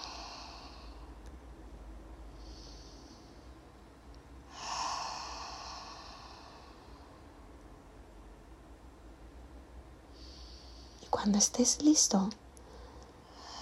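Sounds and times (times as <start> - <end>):
deep breaths in through the nose and out through the mouth: 0.0 - 1.3, 2.2 - 3.8, 4.4 - 7.5, 10.0 - 11.0, 12.6 - 13.6
low steady hum: 0.0 - 13.6
speech: 11.2 - 12.4.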